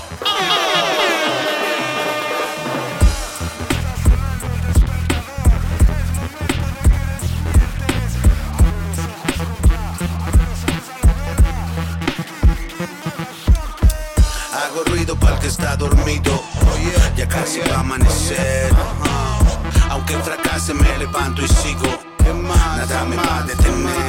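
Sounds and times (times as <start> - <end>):
gliding siren-like synth tones: 0.0 - 4.0
heavy bass: 0.0 - 12.8, 13.8 - 24.0
loud punchy hip hop drum beat: 3.0 - 12.8, 13.5 - 24.0
speech: 20.6 - 22.0.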